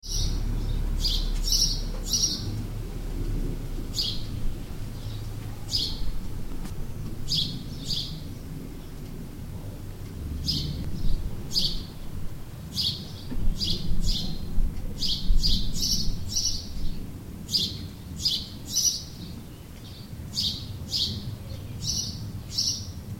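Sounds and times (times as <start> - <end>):
house sparrow chirping: 0.0 - 2.6, 3.8 - 23.0.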